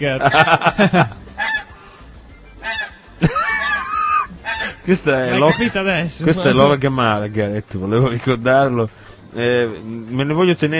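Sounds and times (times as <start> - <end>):
laughter: 0.0 - 1.2, 3.2 - 5.8
speech: 0.0 - 1.2, 4.9 - 10.7
bird call device imitating goose honking: 1.4 - 1.8, 2.6 - 5.9.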